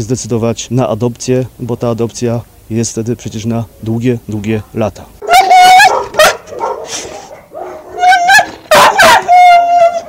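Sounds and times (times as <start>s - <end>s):
speech: 0.0s - 5.2s, 6.9s - 7.2s
kennel dogs barking and yelping at an animal shelter in Bielsko Poland: 5.2s - 10.0s.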